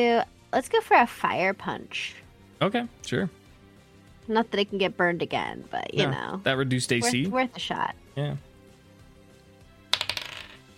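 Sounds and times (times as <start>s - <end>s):
speech: 0.0s - 3.4s, 4.3s - 8.5s
die clattering onto a hard tabletop: 9.9s - 10.6s.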